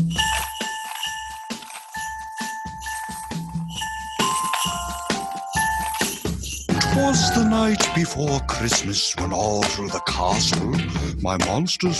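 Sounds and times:
sleigh bells jingling in a cheerful Christmas song: 0.0 - 8.9
speech: 7.0 - 11.9.

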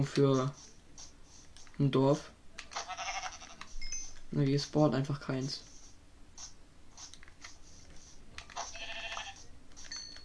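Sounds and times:
speech: 0.0 - 0.7, 1.8 - 2.4, 4.3 - 5.7
video-game sheep bleating: 2.8 - 3.6, 8.6 - 9.4.

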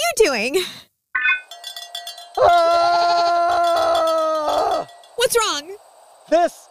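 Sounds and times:
speech: 0.2 - 0.9, 5.3 - 6.6
goat bleating: 2.4 - 4.9.

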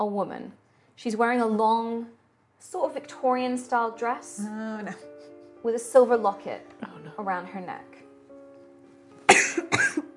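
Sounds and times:
speech: 0.0 - 8.0
harsh throaty coughs: 9.3 - 10.1.

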